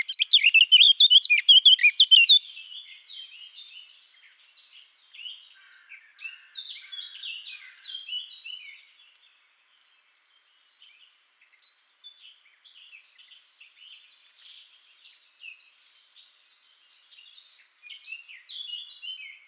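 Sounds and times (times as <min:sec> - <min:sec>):
Eurasian blackcap song in Garching: 0:00.0 - 0:02.4.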